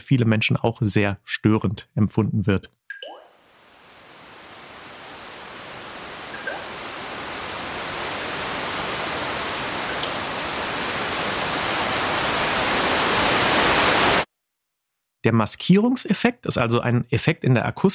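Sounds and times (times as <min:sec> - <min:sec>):
speech: 0:00.0 - 0:02.8, 0:15.2 - 0:17.9
white noise broadband hiss: 0:03.4 - 0:14.3.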